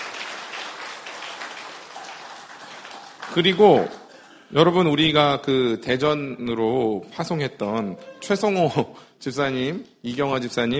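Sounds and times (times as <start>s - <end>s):
audience applauding: 0.0s - 4.4s
speech: 3.3s - 10.7s.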